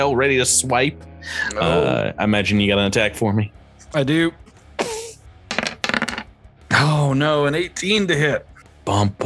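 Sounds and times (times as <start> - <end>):
speech: 0.0 - 4.4, 6.8 - 9.2
dice rattling across a hard tabletop: 5.5 - 6.3.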